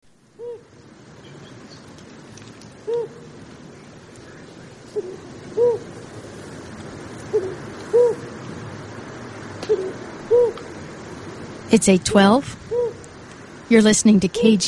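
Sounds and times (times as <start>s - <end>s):
steady background hiss: 0.0s - 14.6s
Flammulated owl giving low soft hoots: 0.3s - 0.7s, 2.8s - 3.3s, 4.2s - 6.5s, 7.2s - 8.3s, 9.6s - 10.7s, 12.6s - 13.2s
speech: 11.7s - 12.6s, 13.7s - 14.6s.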